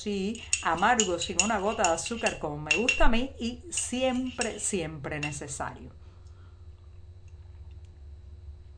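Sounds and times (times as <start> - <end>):
speech: 0.0 - 6.0
low steady hum: 0.0 - 8.7
spoon stirring coffee in a cup: 0.3 - 5.4.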